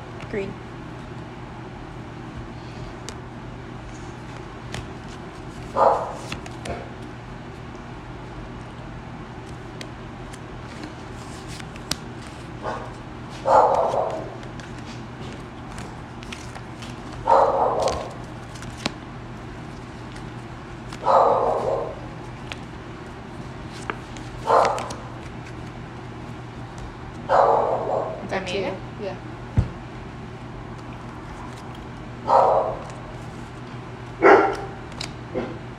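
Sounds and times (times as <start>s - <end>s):
steady low hum: 0.0s - 35.7s
dog barking sharp woofs: 5.8s - 6.2s, 12.6s - 14.3s, 17.3s - 18.0s, 21.0s - 22.0s, 24.5s - 24.9s, 27.3s - 28.2s, 32.3s - 32.8s, 34.2s - 34.8s.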